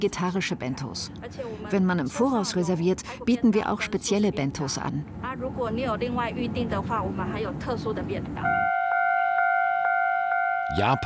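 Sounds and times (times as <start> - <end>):
speech: 0.0 - 8.7, 10.7 - 11.0
railway level crossing warning bell ringing: 8.4 - 11.0.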